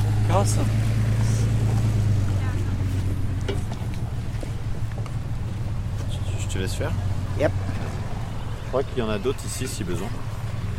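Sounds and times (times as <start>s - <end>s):
trucks rumbling past with deep engine drone: 0.0s - 10.7s
speech: 0.4s - 1.0s, 6.6s - 7.8s, 8.7s - 10.3s.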